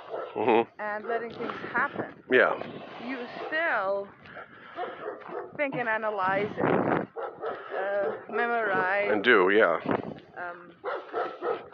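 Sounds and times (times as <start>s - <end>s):
large dog barking deep gruff barks: 0.0s - 0.4s, 3.2s - 3.7s, 4.3s - 5.6s, 7.1s - 8.5s, 10.8s - 11.7s
speech: 0.4s - 7.1s, 7.8s - 10.9s.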